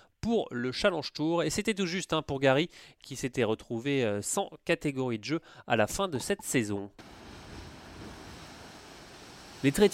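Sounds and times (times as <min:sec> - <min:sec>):
speech: 0:00.2 - 0:07.2, 0:09.6 - 0:09.9
sea waves washing against the shore: 0:07.0 - 0:09.9.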